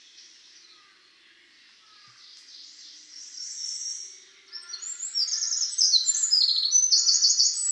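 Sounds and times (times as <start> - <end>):
Eurasian wren Troglodytes troglodytes song: 0.0 - 7.7.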